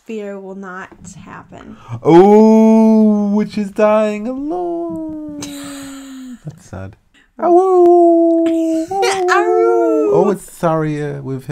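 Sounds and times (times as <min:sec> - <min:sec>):
speech: 0:00.1 - 0:05.2, 0:06.4 - 0:11.5
wolves howling together in a video game: 0:08.7 - 0:10.4.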